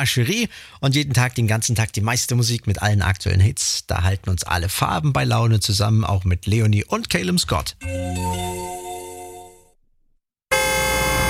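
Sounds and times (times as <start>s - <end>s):
speech: 0.0s - 8.6s
car horn honking: 10.5s - 11.2s.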